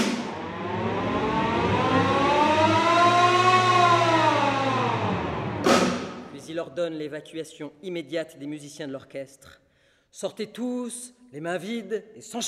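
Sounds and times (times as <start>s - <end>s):
great alarm siren wailing: 0.0s - 6.4s
speech: 6.7s - 12.4s.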